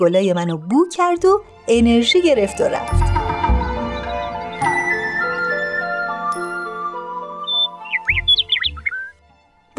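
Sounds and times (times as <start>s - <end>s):
speech: 0.0s - 3.2s
sustained ringing musical tones: 2.1s - 8.2s
nightingale calling in quick high twisting whistles: 2.5s - 9.2s.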